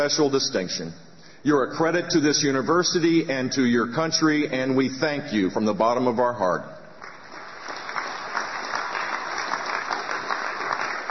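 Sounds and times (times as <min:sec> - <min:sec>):
speech: 0:00.0 - 0:06.8
large crowd applauding at university ceremony: 0:07.0 - 0:11.0.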